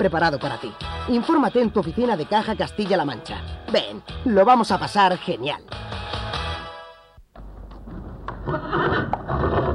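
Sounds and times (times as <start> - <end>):
speech: 0.0 - 5.9
horse whinnying: 8.4 - 9.7.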